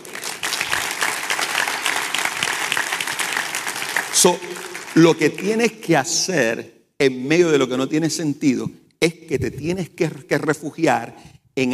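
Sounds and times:
room full of people applauding: 0.0 - 5.8
speech: 4.2 - 11.7.

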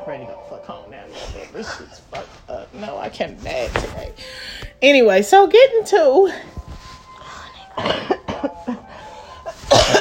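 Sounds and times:
speech: 0.1 - 6.6, 7.8 - 8.2
breathing: 4.1 - 4.8, 8.9 - 9.5
person coughing after laughing hard: 7.7 - 8.6, 9.6 - 10.0.

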